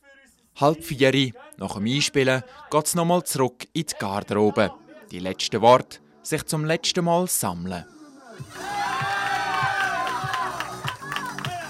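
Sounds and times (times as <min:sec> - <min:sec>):
speech: 0:00.6 - 0:08.8
arena crowd of spectators roaring and cheering as the team enters: 0:08.4 - 0:11.6
spectators shouting: 0:08.4 - 0:11.6.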